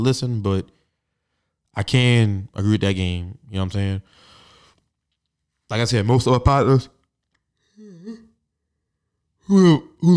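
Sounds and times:
speech: 0:00.0 - 0:00.8, 0:01.8 - 0:04.3, 0:05.7 - 0:07.0, 0:09.5 - 0:10.1
tired person yawning: 0:07.7 - 0:08.4, 0:09.4 - 0:10.1.

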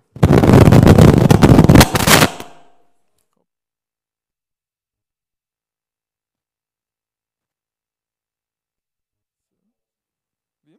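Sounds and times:
loud harsh electrical crackling burst from a loose contact: 0:00.0 - 0:02.8.

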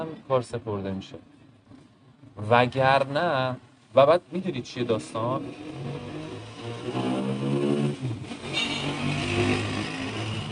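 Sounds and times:
speech: 0:00.2 - 0:01.4, 0:02.4 - 0:06.2
motorcycle engine revving while passing by: 0:05.1 - 0:10.4.

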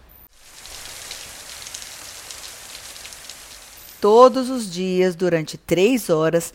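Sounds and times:
hail pattering: 0:00.3 - 0:04.7
speech: 0:04.0 - 0:06.5.

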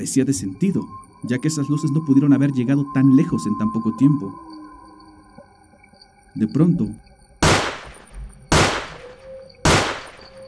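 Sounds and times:
speech: 0:00.0 - 0:04.6, 0:06.4 - 0:07.0
gunshots from a firearm: 0:07.4 - 0:10.4.

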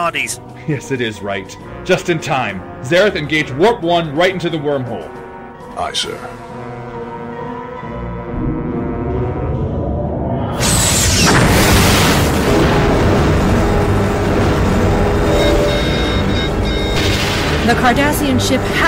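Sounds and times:
speech: 0:00.0 - 0:05.2, 0:05.8 - 0:06.6, 0:17.7 - 0:18.8
low rumble: 0:08.2 - 0:18.8
explosion blast destroying a starship's starboard nacelle: 0:08.3 - 0:18.8.

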